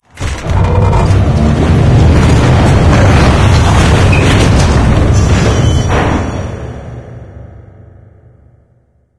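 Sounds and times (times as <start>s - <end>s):
sled: 0.1s - 6.6s.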